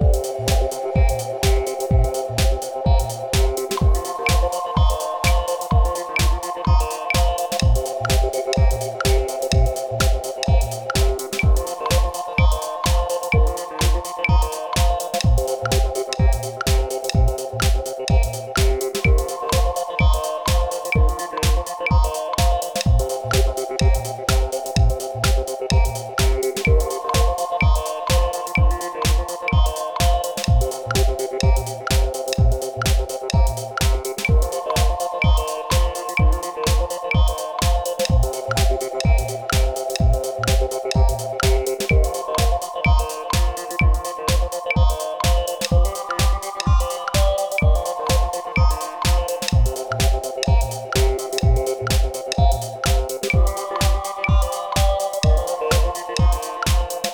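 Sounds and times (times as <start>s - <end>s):
fantasy ticking clock game loop: 0.0s - 57.1s.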